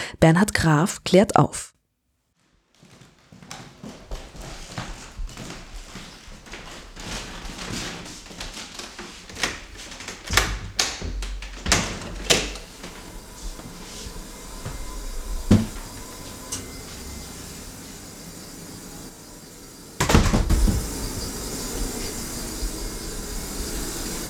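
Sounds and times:
speech: 0.1s - 1.7s
draft-free air conditioning system hissing and whirring in an archive: 4.1s - 24.2s
scattered clicks and knocks: 9.3s - 12.7s.

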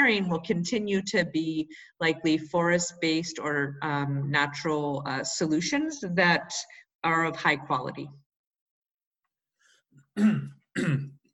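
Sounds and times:
speech: 0.1s - 8.2s, 10.2s - 11.1s
faint breath: 1.7s - 2.0s, 9.6s - 10.0s
forceful throat-clearing coughs: 10.2s - 11.2s.

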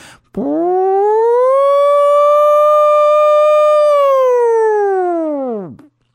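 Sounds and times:
alarm siren wailing sound effect: 0.4s - 5.9s.

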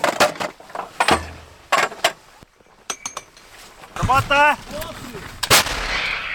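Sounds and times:
metallic clanks and clinks of artillery handling: 0.0s - 3.5s
artillery crew firing rounds toward enemy positions in Ukraine: 5.4s - 6.3s.

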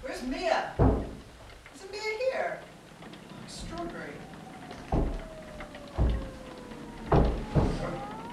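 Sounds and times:
speech: 0.2s - 0.9s
heavy dull knocks on a door: 0.8s - 1.3s, 4.8s - 8.1s.

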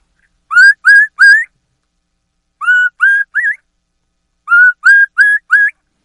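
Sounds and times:
turkey mouth call whistling high clear peeps: 0.5s - 1.5s, 2.6s - 3.6s, 4.5s - 5.8s.

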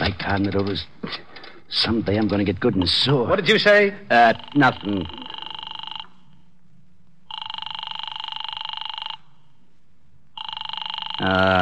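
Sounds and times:
low hum: 0.0s - 11.6s
speech: 0.1s - 5.2s, 11.2s - 11.6s
telephone ringing unanswered: 4.1s - 6.4s, 7.3s - 9.5s, 10.3s - 11.6s.

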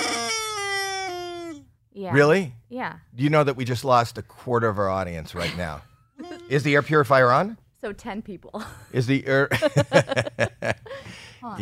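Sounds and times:
squeezed rubber toy chicken squawking: 0.0s - 1.6s
speech: 2.0s - 5.9s, 6.5s - 11.6s
laughter: 9.5s - 11.2s.

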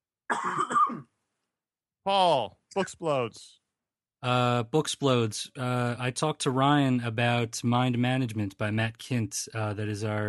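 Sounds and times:
speech: 0.3s - 0.6s, 2.1s - 3.6s, 4.2s - 10.2s
person coughing: 0.3s - 1.1s.

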